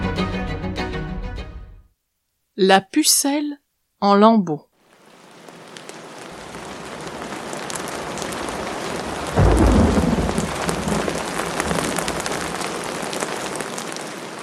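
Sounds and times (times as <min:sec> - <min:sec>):
speech: 0:02.6 - 0:04.7
heavy rain pouring: 0:04.8 - 0:14.4
thunder rumbling: 0:06.2 - 0:14.4.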